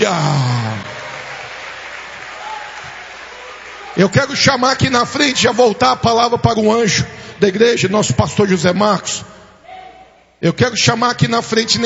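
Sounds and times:
speech: 0.0s - 0.5s, 4.0s - 9.4s, 10.4s - 11.8s
church congregation applauding during a worship service: 0.0s - 6.4s.

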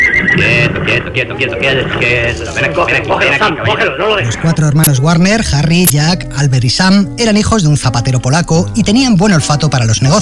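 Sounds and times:
horse neighing and whinnying: 0.0s - 0.9s
speech: 0.4s - 10.2s.

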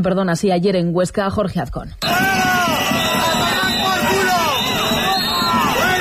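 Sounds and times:
speech: 0.0s - 2.4s
crowd of protesters shouting and jeering: 2.0s - 5.9s.

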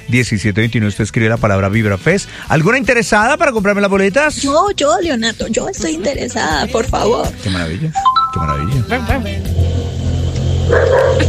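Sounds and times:
speech: 0.1s - 9.7s, 10.7s - 11.2s
dog barking: 10.7s - 11.2s.

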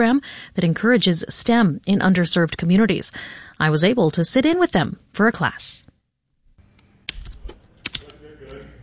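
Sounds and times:
speech: 0.0s - 5.9s
low murmur of room noise: 6.6s - 8.8s
students typing on computer keyboards in a class: 7.1s - 8.8s.

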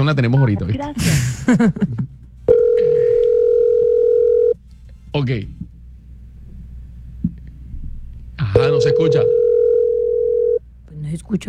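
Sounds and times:
speech: 0.0s - 2.2s, 5.2s - 5.6s, 8.5s - 9.4s, 11.1s - 11.4s
telephone dial tone: 2.5s - 4.6s, 8.9s - 10.6s.

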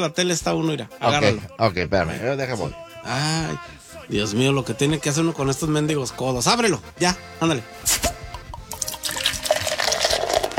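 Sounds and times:
speech: 0.0s - 8.2s
fizzy drink bubbling in a glass: 8.7s - 10.5s.

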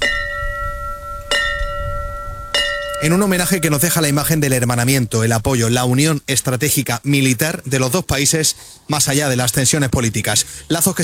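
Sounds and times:
bell rung in memory of firefighters killed in attacks: 0.0s - 4.4s
speech: 3.0s - 11.0s.

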